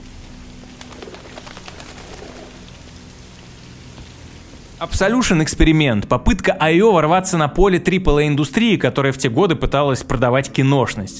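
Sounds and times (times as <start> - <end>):
pigeon wings flapping: 0.6 - 2.8
speech: 4.8 - 11.1.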